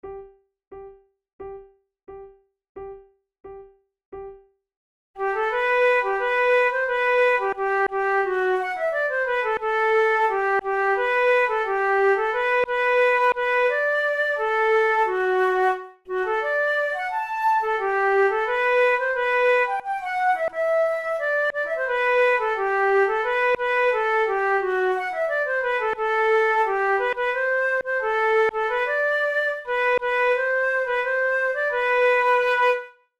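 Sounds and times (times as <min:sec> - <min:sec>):
musical duet: 0:05.2 - 0:33.0.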